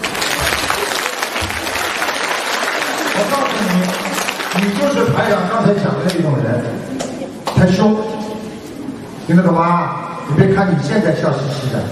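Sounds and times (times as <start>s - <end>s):
audience applause: 0.0s - 5.3s
faint murmur of voices: 0.0s - 11.9s
speech: 3.2s - 7.0s, 7.6s - 8.3s, 9.3s - 11.9s.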